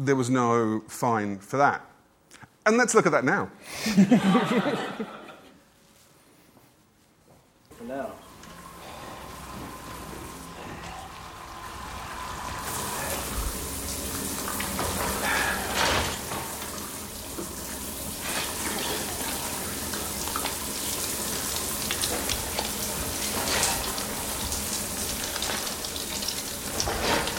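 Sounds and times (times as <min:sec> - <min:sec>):
speech: 0:00.0 - 0:05.2
laughter: 0:03.8 - 0:05.6
shower water running in a steady hissing rush: 0:07.7 - 0:27.3.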